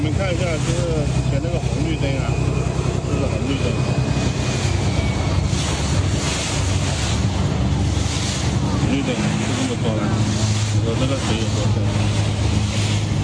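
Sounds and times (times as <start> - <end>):
constant low rumble: 0.0 - 13.2
deep floodwater churning and rushing through a city street after Typhoon Maysak: 0.0 - 13.2
voices calling: 0.0 - 13.2.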